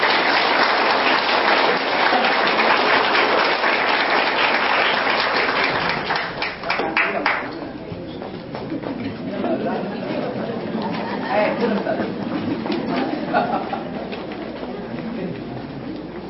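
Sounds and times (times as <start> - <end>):
audience at a performance applauding singers: 0.0 - 7.6
laughter: 1.6 - 3.1, 8.6 - 14.5.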